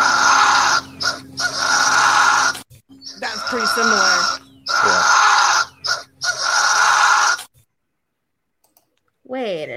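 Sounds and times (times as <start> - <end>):
fisher cat screeching call: 0.0 - 7.5
speech: 3.5 - 4.3.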